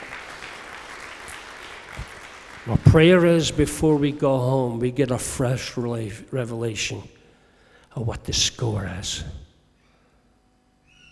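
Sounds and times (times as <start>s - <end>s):
crowd applause: 0.0s - 4.1s
speech: 2.6s - 7.2s, 8.0s - 9.4s.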